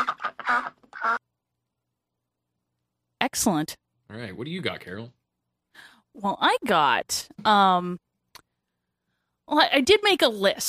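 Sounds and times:
duck quacking: 0.0s - 1.2s
speech: 3.4s - 5.2s, 5.8s - 8.0s, 9.5s - 10.6s.

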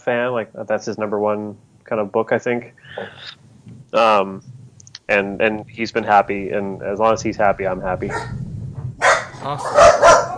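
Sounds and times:
speech: 0.0s - 8.4s, 9.4s - 10.2s
faint low rumble: 0.0s - 10.1s
dogs barking scared by thunder: 8.1s - 8.4s, 9.0s - 10.3s.

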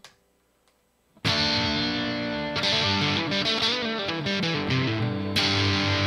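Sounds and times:
electric guitar on a full distortion preset playing chords: 1.2s - 6.0s.

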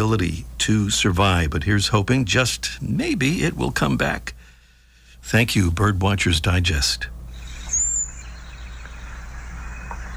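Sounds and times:
speech: 0.0s - 4.4s, 5.2s - 7.2s
low hum: 0.0s - 10.1s
Cedar Waxwing thin high-pitched call: 7.4s - 10.1s.

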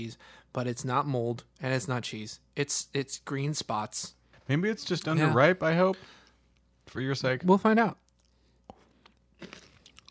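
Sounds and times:
speech: 0.0s - 6.2s, 6.9s - 8.0s, 9.4s - 9.7s
crackly chewing of pickled garlic: 8.0s - 10.1s
crisp bite into pickled garlic: 9.3s - 10.1s.

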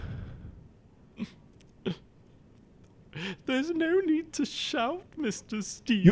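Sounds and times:
low rumble: 0.0s - 6.1s
speech: 1.2s - 2.0s, 3.2s - 6.1s
man sobbing: 1.2s - 2.1s, 3.1s - 4.0s, 5.7s - 6.1s.

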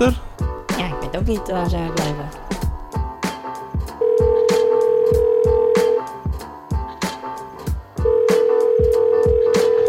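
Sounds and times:
speech: 0.0s - 0.2s, 1.2s - 2.4s
music with rhythmic beat: 0.0s - 9.8s
phone line's electronic ringing tone as a call is placed: 4.0s - 6.1s, 8.0s - 9.8s.

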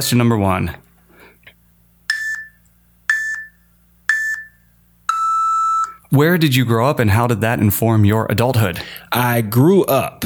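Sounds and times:
speech: 0.0s - 0.8s, 6.1s - 10.2s
electronic timer beeps signalling answer time is up: 2.1s - 6.0s.

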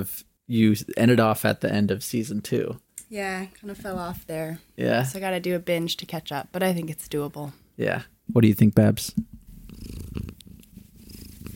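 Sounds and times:
speech: 0.0s - 10.1s
female cat purring: 9.3s - 11.5s.

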